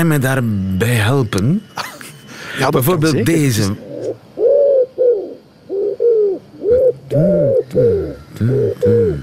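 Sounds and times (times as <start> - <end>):
speech: 0.0 - 1.9, 2.6 - 3.8, 7.1 - 9.2
wood pigeon cooing: 3.8 - 9.2.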